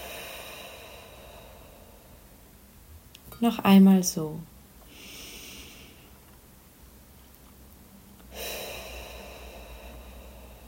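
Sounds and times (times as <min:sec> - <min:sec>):
deep breath into the belly and out through the mouth: 0:00.0 - 0:02.4, 0:04.9 - 0:06.2, 0:08.3 - 0:10.6
speech: 0:03.4 - 0:04.5.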